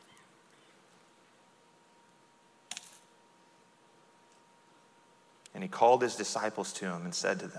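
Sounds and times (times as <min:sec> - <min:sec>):
faint steady hiss: 0:00.0 - 0:07.5
small coins dropping into offering box: 0:02.7 - 0:03.1
speech: 0:05.6 - 0:07.5.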